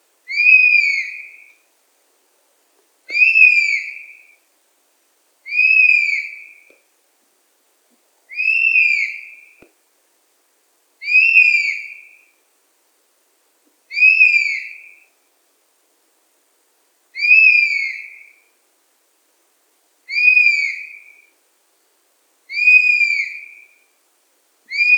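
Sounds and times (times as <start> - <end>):
Pernis apivorus honey buzzard calling: 0.3 - 1.5, 3.1 - 4.2, 5.5 - 6.7, 8.3 - 9.6, 11.0 - 12.1, 13.9 - 15.0, 17.2 - 18.3, 20.1 - 21.1, 22.5 - 23.8, 24.7 - 24.9.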